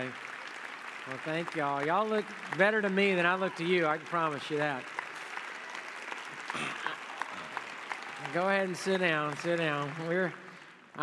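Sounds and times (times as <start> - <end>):
audience applause during a sermon: 0.0 - 11.0
speech: 1.0 - 5.0, 8.3 - 10.4.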